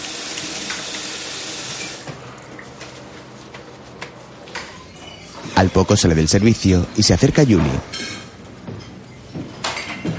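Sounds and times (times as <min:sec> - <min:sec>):
water running from a tap into a bathroom sink: 0:00.0 - 0:02.1
speech: 0:05.6 - 0:08.1.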